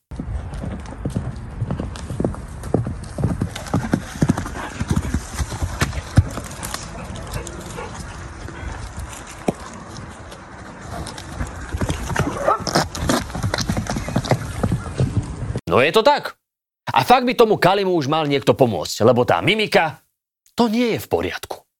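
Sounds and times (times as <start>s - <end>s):
horse hooves clip-clopping at a walk: 0.1s - 15.6s
faint outdoor noise: 0.1s - 21.7s
speech: 15.8s - 16.4s, 17.0s - 20.0s, 20.6s - 21.6s.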